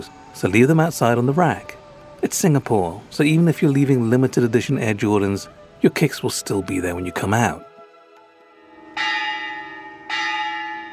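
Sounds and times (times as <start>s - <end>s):
speech: 0.0s - 7.7s
Hindu temple entrance bell ringing: 8.5s - 10.9s.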